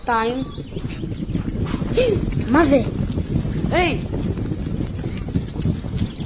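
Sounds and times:
speech: 0.0 - 4.2
low rumbling background: 0.0 - 6.2
wind: 0.0 - 6.2
horse hooves clip-clopping: 0.8 - 6.2.

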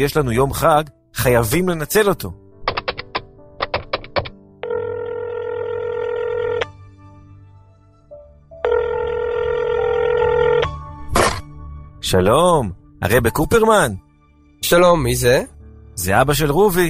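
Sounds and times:
speech: 0.0 - 2.4, 12.1 - 14.0, 14.6 - 16.8
telephone ringing with long buzzing rings: 4.6 - 6.7, 8.6 - 10.8.

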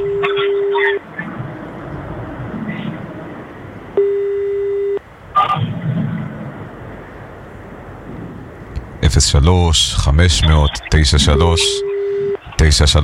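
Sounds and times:
telephone ringback tones while a long-distance number is called: 0.0 - 1.0, 4.0 - 5.0, 11.3 - 12.4
noisy rumbling background: 0.0 - 13.0
speech: 9.2 - 11.9, 12.6 - 13.0.

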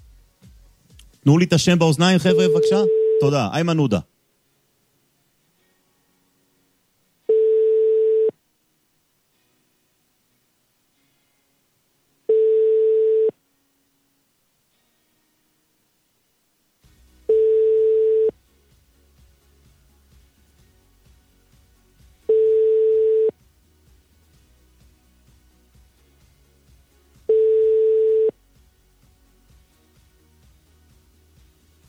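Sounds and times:
speech: 1.2 - 4.1
telephone ringing tone beeps on an outgoing call: 2.2 - 3.4, 7.3 - 8.4, 12.3 - 13.4, 17.3 - 18.3, 22.3 - 23.3, 27.3 - 28.3.

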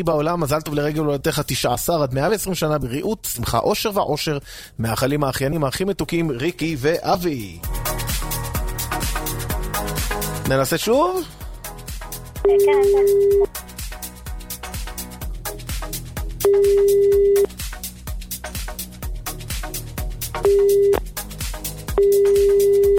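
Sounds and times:
speech: 0.0 - 7.8, 10.5 - 11.4, 12.4 - 13.6, 16.5 - 17.5, 20.5 - 21.0
busy rhythmic background: 3.2 - 22.9
phone line ringing tone: 12.4 - 13.5, 16.4 - 17.5, 20.4 - 21.0, 22.0 - 22.9.

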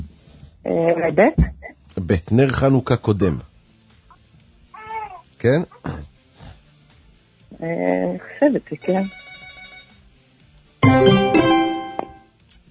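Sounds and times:
speech: 0.7 - 3.5, 5.4 - 6.1, 7.6 - 9.2
telephone ringing with electronic trill: 9.1 - 9.9, 10.8 - 12.2.

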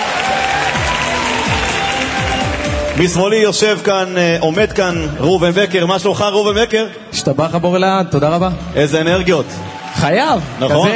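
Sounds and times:
audience applause at a music competition final: 0.0 - 5.1, 9.0 - 10.9
speech: 3.0 - 10.9.

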